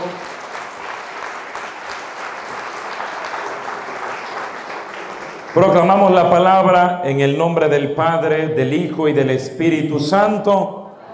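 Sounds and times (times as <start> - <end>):
audience applause after a prayer: 0.0 - 6.1
speech: 5.6 - 10.8.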